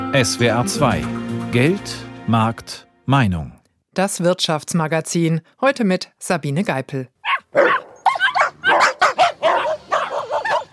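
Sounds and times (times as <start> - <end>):
speech: 0.1 - 7.8
dog barking with sharp yaps and whiny barks: 7.2 - 10.7.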